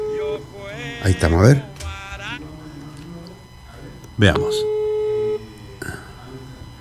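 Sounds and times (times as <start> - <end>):
steady telephone tone: 0.0 - 2.7, 4.2 - 5.6
speech: 0.4 - 1.7, 4.2 - 4.8.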